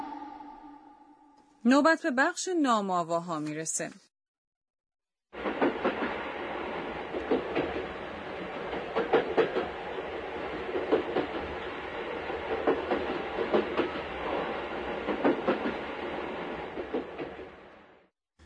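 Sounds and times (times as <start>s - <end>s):
speech: 1.6s - 4.1s
train rolling along the tracks with wheels clacking: 5.4s - 17.9s.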